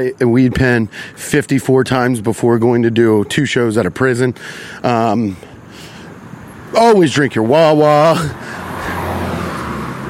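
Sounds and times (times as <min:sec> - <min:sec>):
speech: 0:00.0 - 0:05.9, 0:06.7 - 0:08.6
loud car engine roaring: 0:04.8 - 0:10.0.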